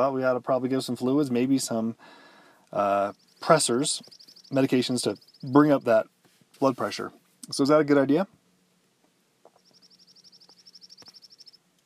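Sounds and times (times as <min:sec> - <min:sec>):
speech: 0:00.0 - 0:08.4
low hum: 0:00.0 - 0:11.8
bird singing a rapid even trill of high chirps at Ellis Trailhead, Sandia Mountains: 0:03.0 - 0:05.8, 0:09.5 - 0:11.6.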